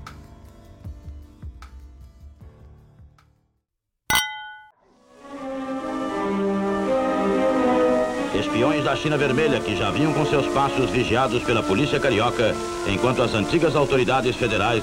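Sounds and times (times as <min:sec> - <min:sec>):
music: 0:00.0 - 0:03.6, 0:04.8 - 0:14.8
wine glasses clinking in a toast: 0:04.1 - 0:04.7
speech: 0:08.6 - 0:14.8.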